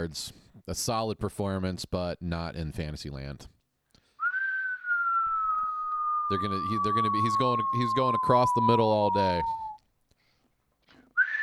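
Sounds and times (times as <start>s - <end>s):
speech: 0.0s - 3.6s, 6.3s - 9.6s
person whistling: 4.2s - 9.8s, 11.2s - 11.4s.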